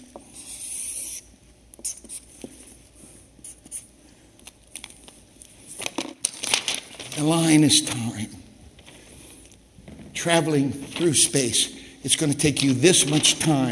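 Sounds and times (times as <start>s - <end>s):
pen scratching across paper: 0.2s - 1.2s
speech: 1.8s - 2.2s, 7.2s - 8.4s, 10.2s - 13.7s
rustles, taps and crinkles of paper being handled: 4.4s - 7.6s, 8.7s - 9.6s, 10.2s - 13.7s.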